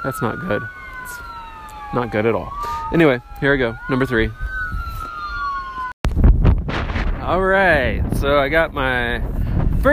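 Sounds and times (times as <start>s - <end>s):
speech: 0.0s - 1.3s, 1.9s - 4.4s, 7.3s - 9.9s
ambulance siren wailing: 0.0s - 6.0s
gusty outdoor wind: 0.0s - 9.9s.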